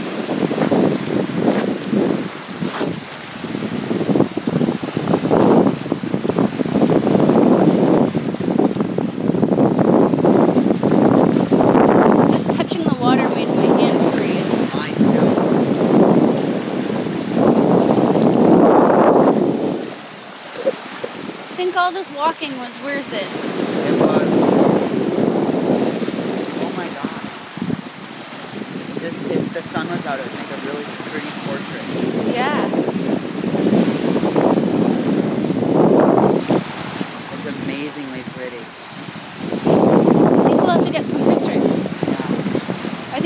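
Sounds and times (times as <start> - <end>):
gusty wind buffeting the microphone: 0.0 - 43.2
loud ocean waves crashing against a rocky shore: 0.0 - 43.2
people talking: 12.3 - 15.4, 20.6 - 20.8, 21.6 - 24.5, 26.5 - 27.3, 29.0 - 32.8, 37.3 - 38.6, 40.4 - 42.4.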